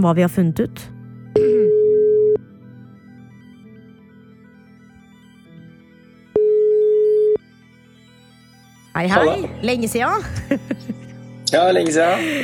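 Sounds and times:
speech: 0.0s - 1.5s, 9.0s - 12.4s
ringback tone of an outgoing telephone call: 1.4s - 2.4s, 6.3s - 7.4s
laughter: 10.1s - 12.4s.

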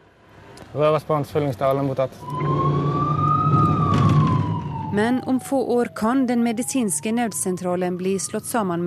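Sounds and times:
low rumble of a vehicle engine: 0.3s - 7.4s
speech: 0.7s - 2.9s, 4.9s - 8.8s
ambulance siren wailing: 2.2s - 8.8s.

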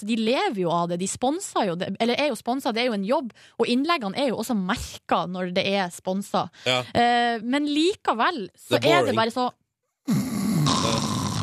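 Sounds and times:
speech: 0.0s - 10.3s
person imitating snoring: 10.1s - 11.4s.

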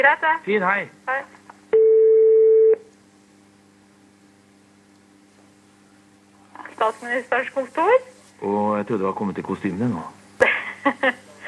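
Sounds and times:
speech: 0.0s - 1.4s, 6.8s - 11.3s
telephone tone as a call is placed: 1.7s - 2.9s
laughter: 10.4s - 11.4s.

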